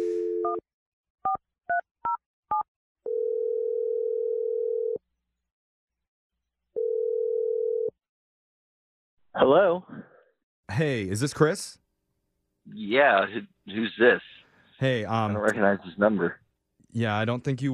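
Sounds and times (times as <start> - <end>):
telephone dial tone: 0.0 - 0.6, 3.1 - 5.0, 6.8 - 8.0
long steady telephone ringing tones: 3.1 - 5.0, 6.8 - 7.9
speech: 9.4 - 10.1, 10.7 - 11.8, 12.7 - 17.7.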